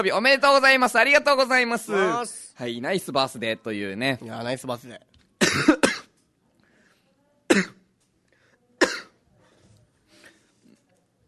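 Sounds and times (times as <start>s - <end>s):
speech: 0.0s - 5.8s, 7.6s - 7.8s
person coughing: 5.4s - 6.1s, 7.5s - 7.8s, 8.8s - 9.2s
quiet breathing: 6.5s - 7.4s, 8.1s - 11.1s.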